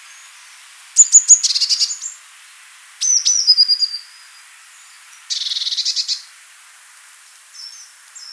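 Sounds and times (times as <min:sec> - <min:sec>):
Eurasian blue tit song: 0:00.0 - 0:02.2, 0:03.0 - 0:06.3.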